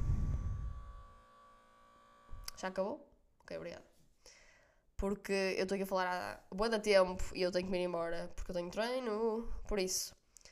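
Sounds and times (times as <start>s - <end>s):
refrigerator humming: 0.0s - 2.5s
faint electrical whine: 0.0s - 3.6s
speech: 2.6s - 4.4s, 5.0s - 10.2s.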